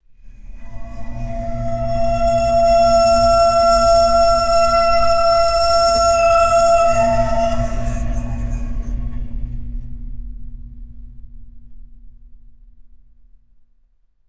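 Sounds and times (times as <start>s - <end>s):
high pitched ringing metallic screech: 0.3s - 9.2s.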